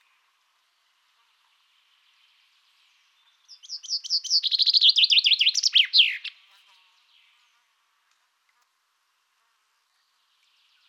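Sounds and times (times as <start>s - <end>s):
common chaffinch singing: 3.2s - 6.4s.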